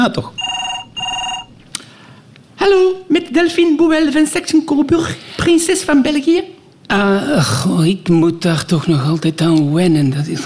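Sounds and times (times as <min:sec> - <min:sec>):
speech: 0:00.0 - 0:00.5, 0:02.6 - 0:10.4
telephone ringing with an electronic trill: 0:00.4 - 0:01.6.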